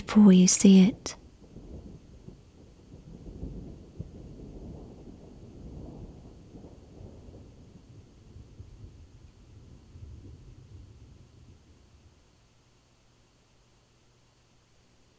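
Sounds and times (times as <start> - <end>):
soft hiss of rain: 0.0 - 15.1
speech: 0.1 - 1.2
deep rumbling rolling thunder: 1.0 - 12.5.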